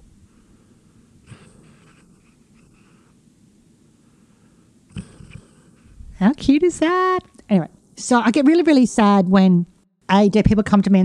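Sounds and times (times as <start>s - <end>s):
hissy background: 0.0s - 9.6s
pet's snuffly snorting breaths: 0.3s - 3.2s, 4.0s - 6.0s
sleeping pet snoring: 1.2s - 3.2s, 4.9s - 5.9s
speech: 6.2s - 11.0s.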